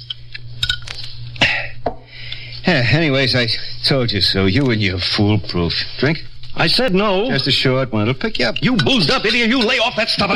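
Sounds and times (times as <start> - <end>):
low steady hum: 0.0 - 10.3
speech: 2.7 - 10.3
drinking glasses clinking in a toast: 8.5 - 10.2.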